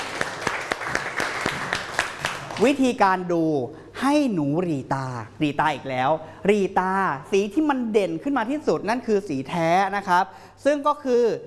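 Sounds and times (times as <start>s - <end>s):
children clapping in a classroom: 0.0s - 2.8s
speech: 2.6s - 11.4s.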